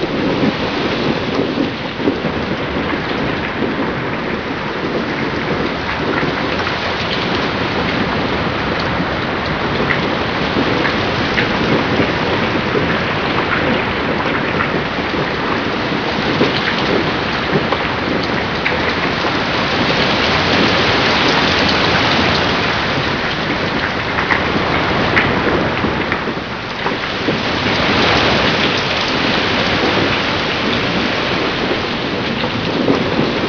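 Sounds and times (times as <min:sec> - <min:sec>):
rain heard from indoors: 0:00.0 - 0:33.4.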